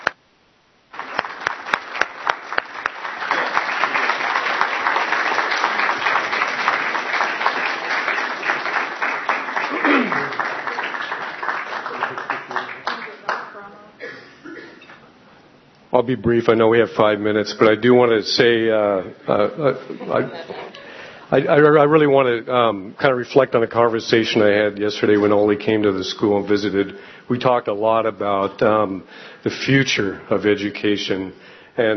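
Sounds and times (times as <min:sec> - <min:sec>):
sharp individual claps: 0:00.0 - 0:00.2, 0:00.9 - 0:13.5
crowd applauding at a school award ceremony: 0:00.9 - 0:13.6
speech: 0:16.0 - 0:20.6, 0:21.3 - 0:31.9
laughter: 0:19.2 - 0:21.7.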